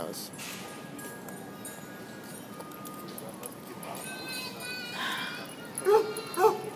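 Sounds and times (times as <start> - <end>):
steady low noise: 0.0 - 6.7
large dog barking: 5.8 - 6.7.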